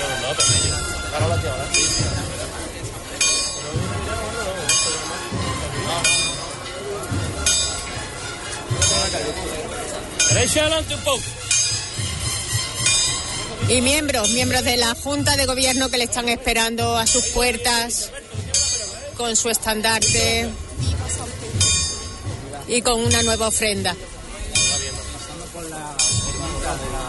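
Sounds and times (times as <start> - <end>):
murmuring outdoor crowd: 0.0 - 27.0
chapel bell ringing with lingering metallic tone: 0.2 - 10.9, 11.5 - 27.0
speech: 10.3 - 11.4, 13.7 - 18.2, 19.2 - 21.2, 22.7 - 24.1.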